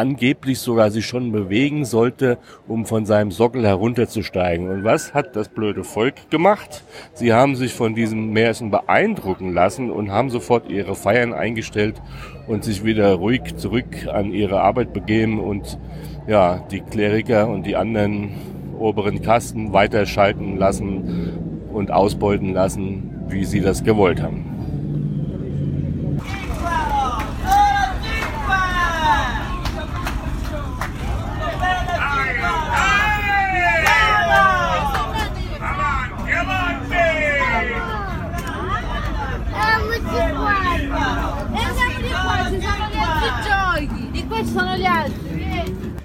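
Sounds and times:
speech: 0.0 - 24.5
dense babble of many overlapping voices at an evening market: 0.0 - 46.0
low rumble of traffic: 0.0 - 46.0
louder calls rising out of the market crowd: 4.4 - 6.3, 26.2 - 46.0.

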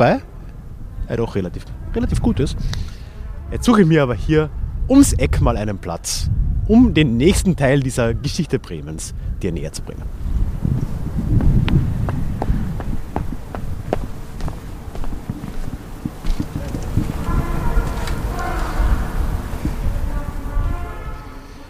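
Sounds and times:
speech: 0.0 - 0.3, 1.1 - 2.9, 3.5 - 10.9
wind buffeting the microphone outdoors in Bremen, Germany: 0.0 - 21.6
trumpeter playing faint sustained tones: 1.6 - 3.9, 16.3 - 21.6
sharp footstep-like taps: 11.4 - 17.0.

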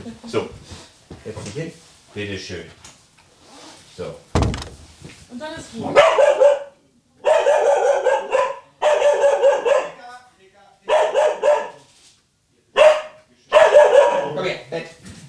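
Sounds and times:
speech: 0.0 - 2.9, 4.0 - 4.3, 5.3 - 6.6
dog barking: 5.9 - 10.1, 10.8 - 11.9, 12.7 - 14.6.

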